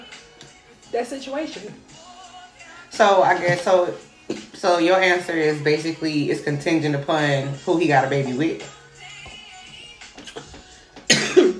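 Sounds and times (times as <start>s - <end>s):
speech: 0.9s - 2.0s, 3.0s - 8.8s
person coughing harshly: 10.2s - 11.5s.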